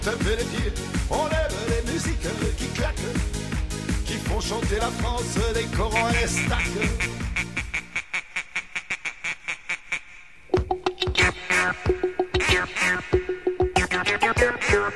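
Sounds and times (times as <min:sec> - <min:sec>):
speech: 0:00.0 - 0:03.4, 0:04.1 - 0:07.5
duck quacking: 0:05.9 - 0:10.3, 0:11.1 - 0:14.9.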